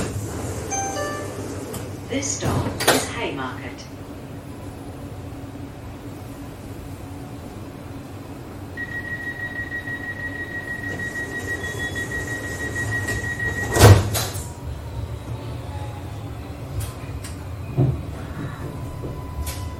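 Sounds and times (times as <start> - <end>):
moving city tram rumble and rattle on a main street in Sydney, Australia: 0.0 - 19.7
thin high-pitched tram whine: 8.8 - 16.9.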